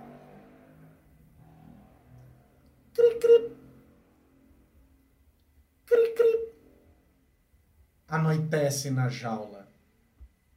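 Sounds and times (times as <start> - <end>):
motorcycle engine revving outside: 0.0 - 4.8
speech: 8.1 - 9.6.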